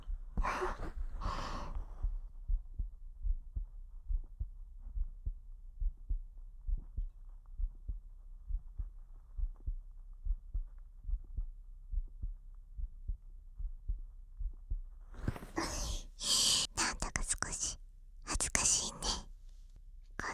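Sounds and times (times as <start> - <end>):
heartbeat thumps: 0.0 - 17.7
breathing: 0.4 - 2.1, 15.2 - 17.7, 18.4 - 19.2.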